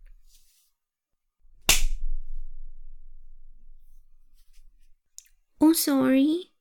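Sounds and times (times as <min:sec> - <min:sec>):
hand slap on a person's buttocks: 0:01.6 - 0:02.1
faint low rumble: 0:02.0 - 0:04.9
speech: 0:05.6 - 0:06.5.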